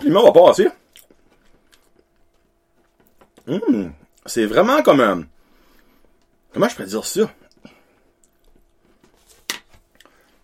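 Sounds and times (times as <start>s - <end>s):
speech: 0.1s - 0.8s, 3.5s - 5.3s, 6.6s - 7.8s
crunchy chewing of a crisp pastry tube: 0.8s - 4.3s, 7.4s - 9.2s.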